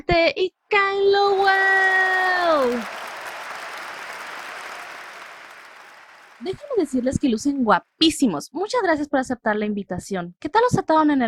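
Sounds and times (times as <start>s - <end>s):
speech: 0.1s - 1.6s, 6.5s - 11.2s
audience applause: 1.1s - 7.8s.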